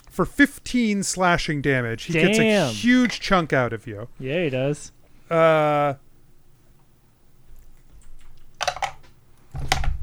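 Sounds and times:
speech: 0.2s - 6.0s
short voiced tone: 2.1s - 3.0s.

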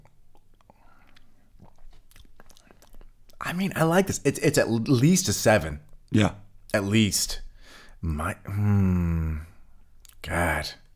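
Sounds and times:
mouth clicks and smacks: 0.0s - 3.4s, 9.9s - 10.3s
sipping bourbon with soft wet slurping: 0.0s - 3.4s
speech: 3.5s - 7.4s, 8.0s - 9.5s, 10.2s - 10.8s
faint breathy noise: 7.5s - 8.0s.

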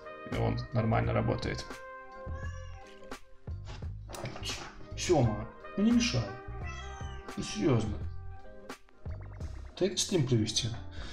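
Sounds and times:
speech: 0.3s - 2.6s, 5.0s - 6.4s, 7.4s - 8.1s, 9.8s - 10.9s
cat meowing for attention: 2.2s - 3.1s, 6.5s - 7.5s.

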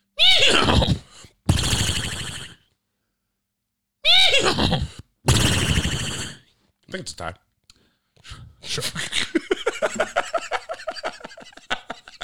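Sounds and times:
people imitating a horse whinny with their voices: 0.2s - 2.7s, 4.0s - 6.5s
speech: 6.9s - 7.5s, 8.8s - 9.2s
laughter: 8.8s - 12.2s.

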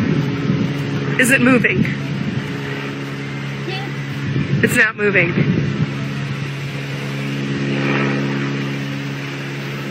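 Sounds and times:
stationary airplane engine drone: 0.0s - 9.9s
speech: 1.2s - 2.2s, 4.6s - 5.8s.

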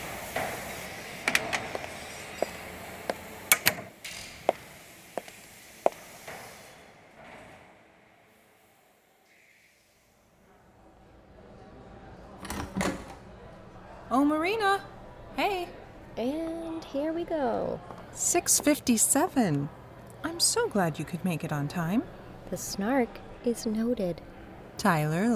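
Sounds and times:
door shutting with a solid thud: 0.0s - 7.7s
sharp irregular clicks and knocks: 0.3s - 3.9s
speech: 14.2s - 16.4s, 17.2s - 19.8s, 20.4s - 25.3s.

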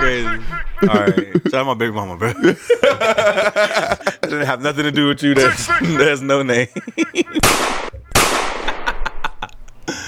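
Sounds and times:
laughter: 0.0s - 10.0s
speech: 0.1s - 7.8s
soundboard gunshot effect of a .22: 7.4s - 8.9s.

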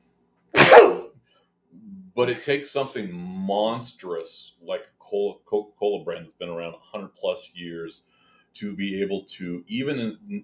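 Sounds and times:
person sneezing: 0.6s - 1.1s
speech: 2.2s - 10.4s.

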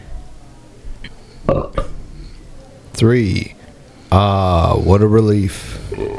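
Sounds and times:
person belching: 1.5s - 1.9s, 5.8s - 6.1s
speech: 3.0s - 5.8s.

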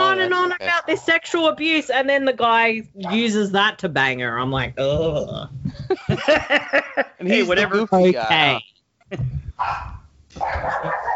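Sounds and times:
speech: 0.9s - 11.1s
laughter: 5.7s - 7.8s
pet dog barking: 9.6s - 11.1s.

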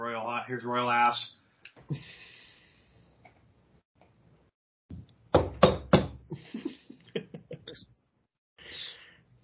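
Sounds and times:
speech: 0.5s - 2.2s
knocking on a door: 5.3s - 6.2s.

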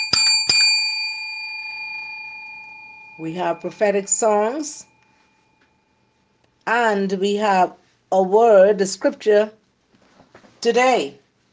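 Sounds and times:
bright metallic bell strikes: 0.0s - 6.1s
speech: 3.2s - 4.9s, 6.7s - 9.6s, 10.6s - 11.2s.

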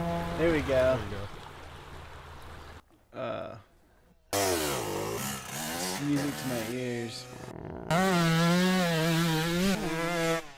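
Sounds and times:
two-stroke engine revving: 0.0s - 0.7s, 4.3s - 10.5s
speech: 0.4s - 1.2s, 3.1s - 3.7s, 6.0s - 8.7s.

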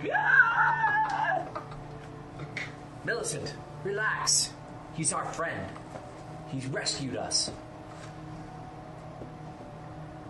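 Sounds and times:
voice imitating a woman's shrill scream: 0.0s - 1.6s
speech: 3.1s - 5.9s, 6.5s - 7.6s.

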